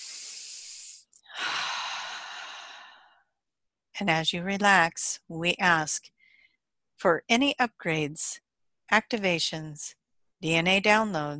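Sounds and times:
deep breath drawn in during a guided relaxation exercise: 0.0s - 3.3s
speech: 4.0s - 6.2s, 7.0s - 11.3s.

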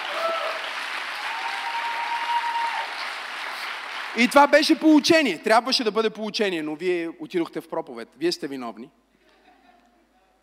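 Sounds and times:
large audience applauding: 0.0s - 4.8s
speech: 4.2s - 9.0s.

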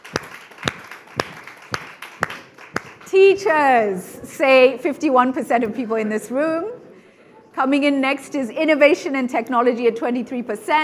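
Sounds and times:
audience clapping slowly at an education discussion: 0.0s - 3.2s
speech: 3.1s - 6.8s, 7.6s - 10.8s.

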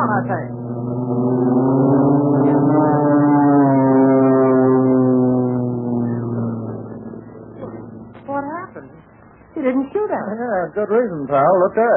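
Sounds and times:
airplane engine droning as plane lands: 0.0s - 9.3s
speech: 0.2s - 0.6s, 10.6s - 11.9s.

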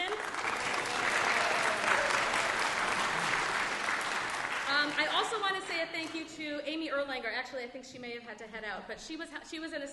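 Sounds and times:
audience applause: 0.0s - 5.7s
speech: 5.3s - 9.9s.

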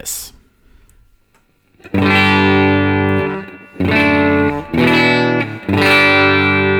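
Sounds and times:
speech: 0.0s - 0.3s
electric guitar chords through an amp-modeling pedal with light reverb: 1.7s - 6.7s.

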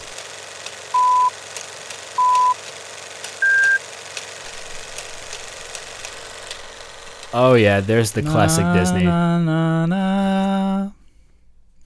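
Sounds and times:
electronic countdown beeps: 1.0s - 1.4s, 2.2s - 2.6s, 3.4s - 3.8s
speech: 7.3s - 10.1s.

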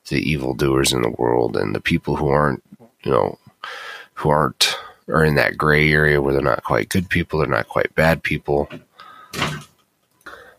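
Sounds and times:
speech: 0.1s - 9.6s
sticky door banging open with thud and scrape: 9.4s - 9.7s.

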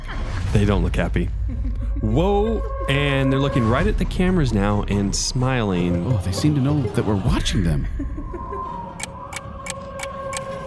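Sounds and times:
constant low hum: 0.0s - 9.7s
speech: 0.5s - 8.5s
laughter: 1.1s - 4.0s, 5.7s - 9.0s
clock ticking: 5.9s - 8.1s.

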